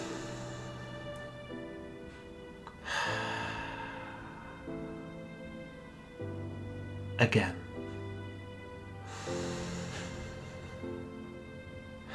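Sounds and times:
people at a poetry reading breathing in deeply: 0:00.0 - 0:05.7, 0:09.0 - 0:12.1
soft sustained musical tones: 0:00.0 - 0:12.1
speech: 0:07.2 - 0:07.6.

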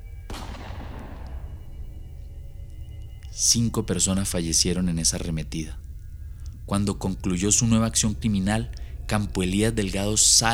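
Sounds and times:
steady low rumble: 0:00.0 - 0:10.5
loud gunshot with decay: 0:00.3 - 0:03.4
speech: 0:03.4 - 0:05.9, 0:06.7 - 0:10.5.

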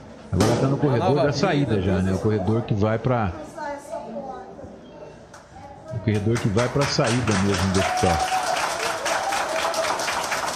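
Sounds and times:
speech: 0:00.3 - 0:03.6, 0:06.1 - 0:08.4
hospital staff applauding in an echoing indoor corridor: 0:06.1 - 0:10.5.

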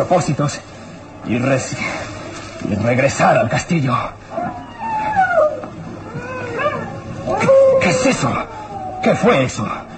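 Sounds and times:
speech: 0:00.0 - 0:04.6, 0:07.4 - 0:09.9
drawn-out wavering canine howls: 0:04.3 - 0:09.5.

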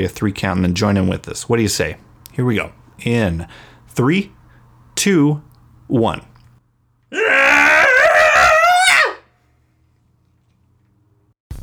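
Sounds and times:
speech: 0:00.0 - 0:04.4, 0:05.0 - 0:06.3
several voices screaming together in a group cathartic scream: 0:07.2 - 0:09.3.

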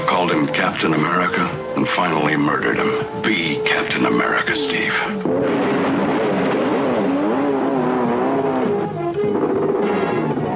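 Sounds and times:
speech: 0:00.2 - 0:06.0
motorcycle engine revving and accelerating: 0:05.3 - 0:10.4.

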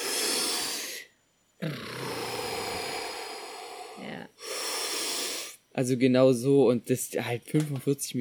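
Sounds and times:
voice imitating scuba tank regulator breathing underwater: 0:00.0 - 0:05.6
speech: 0:05.8 - 0:08.1.

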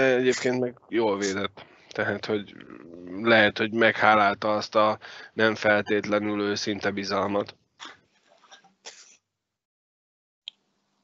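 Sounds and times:
speech: 0:00.0 - 0:08.0
person sneezing: 0:08.9 - 0:09.2.

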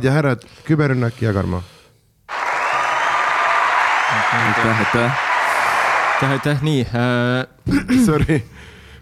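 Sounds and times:
speech: 0:00.0 - 0:01.8, 0:04.3 - 0:05.3, 0:06.2 - 0:08.8
canned crowd applause soundboard effect: 0:02.3 - 0:06.7.

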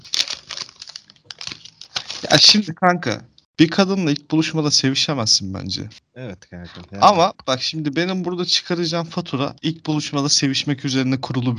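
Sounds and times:
paper rustling and crinkling while searching for pen: 0:00.0 - 0:02.6
speech: 0:02.3 - 0:11.5.

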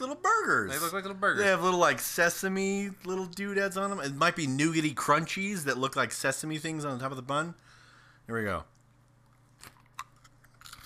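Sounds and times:
faint steady hum: 0:00.0 - 0:10.8
speech: 0:00.5 - 0:07.7, 0:08.3 - 0:08.7
person biting and chewing a crunchy cookie: 0:08.8 - 0:10.8.

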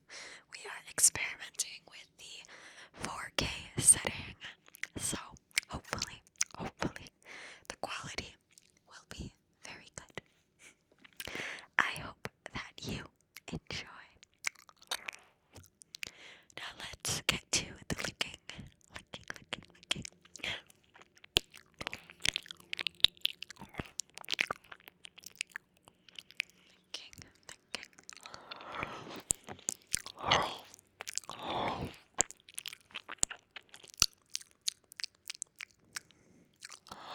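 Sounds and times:
soft breathy swells: 0:00.0 - 0:00.5, 0:02.4 - 0:03.2, 0:07.2 - 0:07.7, 0:10.2 - 0:11.9, 0:16.0 - 0:16.6, 0:25.8 - 0:32.2, 0:35.8 - 0:37.1
wet mouth sounds of ear licking and nibbling on binaural microphone: 0:02.4 - 0:09.3, 0:11.0 - 0:37.1.

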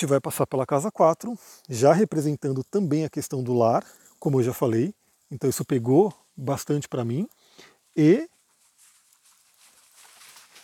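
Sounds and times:
speech: 0:00.0 - 0:08.3
dog running through brush over dry leaves and twigs: 0:08.0 - 0:10.6.

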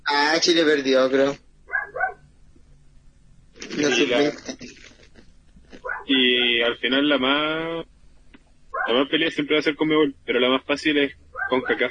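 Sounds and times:
speech: 0:00.1 - 0:01.4, 0:03.8 - 0:04.8, 0:06.1 - 0:07.9, 0:08.8 - 0:11.8
dog barking: 0:01.7 - 0:02.2, 0:05.8 - 0:06.7, 0:08.8 - 0:09.1, 0:11.4 - 0:11.8.

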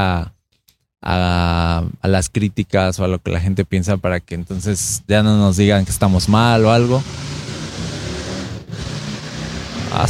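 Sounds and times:
speech: 0:00.0 - 0:00.4, 0:01.0 - 0:07.9
car engine revving: 0:05.7 - 0:10.0.

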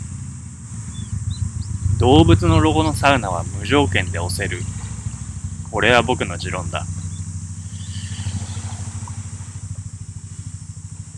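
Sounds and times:
passing car traffic engine noise: 0:00.0 - 0:11.1
speech: 0:02.0 - 0:04.8, 0:05.7 - 0:07.0.

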